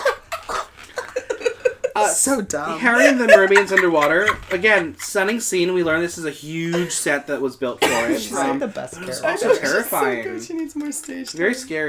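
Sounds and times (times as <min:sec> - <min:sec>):
laughter: 0:00.0 - 0:07.1
speech: 0:02.0 - 0:11.8
person imitating coughing in a mocking exaggerated way: 0:07.8 - 0:08.2.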